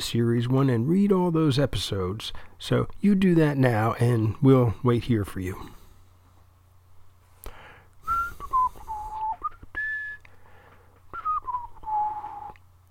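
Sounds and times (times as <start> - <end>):
speech: 0.0 - 5.8
low steady hum: 0.0 - 12.9
person whistling a meandering tune: 8.0 - 10.4, 11.1 - 12.6.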